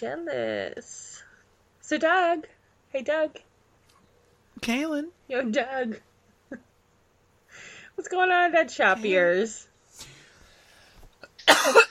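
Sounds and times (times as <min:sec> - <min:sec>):
speech: 0:00.0 - 0:01.3, 0:01.9 - 0:03.5, 0:04.6 - 0:06.6, 0:07.6 - 0:10.1, 0:11.5 - 0:11.8
quiet breathing: 0:00.8 - 0:01.6, 0:07.4 - 0:08.0, 0:09.8 - 0:11.2
person coughing: 0:11.4 - 0:11.8.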